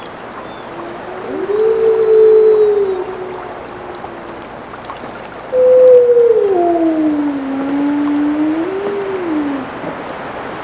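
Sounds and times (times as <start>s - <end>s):
water: 0.0s - 10.6s
wolf howling: 0.7s - 4.5s, 5.5s - 9.8s.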